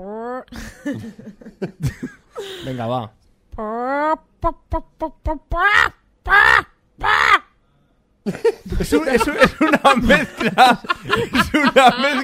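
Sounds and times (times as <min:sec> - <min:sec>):
person imitating a hen laying an egg: 0:00.0 - 0:00.5, 0:03.5 - 0:07.5
speech: 0:00.0 - 0:07.2, 0:08.2 - 0:12.2
several people laughing and chattering: 0:08.8 - 0:12.2.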